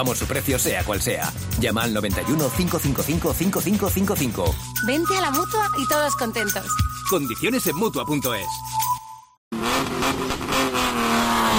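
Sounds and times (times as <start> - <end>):
speech: 0.0 - 8.8
rally car engine revving: 9.5 - 11.5.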